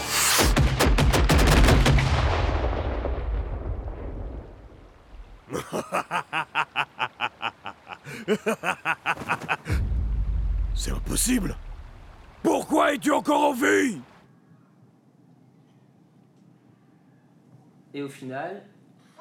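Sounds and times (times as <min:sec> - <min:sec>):
rapid bursts of sharp gunshots: 0:00.3 - 0:02.1
heavy booming blast: 0:00.4 - 0:05.4, 0:09.7 - 0:12.4
laughter: 0:05.5 - 0:09.8
speech: 0:11.2 - 0:11.6, 0:12.9 - 0:14.1, 0:18.0 - 0:18.7.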